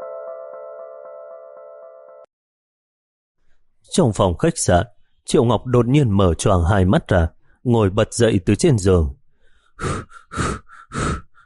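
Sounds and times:
speech: 3.9 - 9.2, 9.8 - 11.2
man panting heavily after waking in fright: 9.4 - 11.4.

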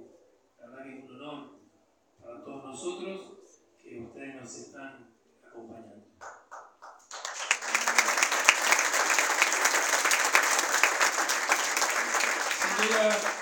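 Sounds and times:
speech: 2.8 - 6.4
audience applause at a ceremony for an honored-teacher award: 6.5 - 13.4.

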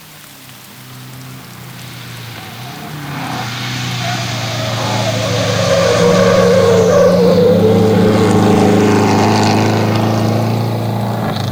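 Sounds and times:
racing cars lapping a race track: 0.1 - 11.5.

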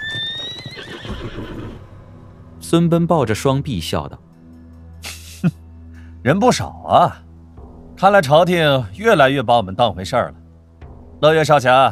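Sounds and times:
horse whinnying: 0.0 - 1.9
speech: 2.7 - 4.3, 6.2 - 7.3, 8.0 - 10.4, 11.2 - 11.9.

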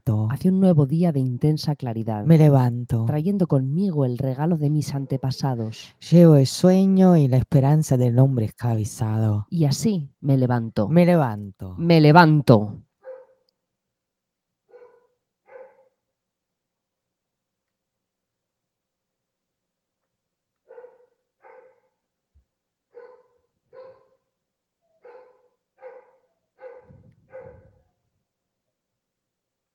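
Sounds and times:
speech: 0.1 - 12.8
dog barking: 13.0 - 13.5, 14.7 - 16.0, 20.7 - 22.0, 22.9 - 24.3, 24.9 - 28.0.

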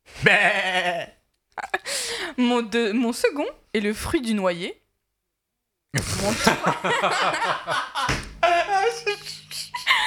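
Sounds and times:
speech: 0.2 - 1.1, 2.4 - 4.8, 5.9 - 8.2
human voice imitating a sheep bleating: 0.2 - 1.2
short burst of vocal sounds: 6.0 - 6.8
laughter: 6.2 - 10.0.

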